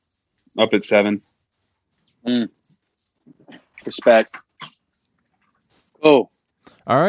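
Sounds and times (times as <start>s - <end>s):
cricket chirping: 0.0s - 0.8s, 2.3s - 3.2s, 3.8s - 7.0s
speech: 0.6s - 1.3s, 2.2s - 2.6s, 3.8s - 4.4s, 6.0s - 7.0s.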